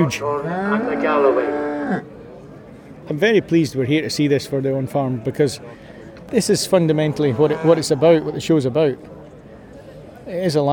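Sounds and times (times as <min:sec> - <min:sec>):
cow mooing: 0:00.0 - 0:02.0, 0:07.3 - 0:08.4
speech: 0:00.0 - 0:02.2, 0:03.1 - 0:09.2, 0:10.3 - 0:10.7.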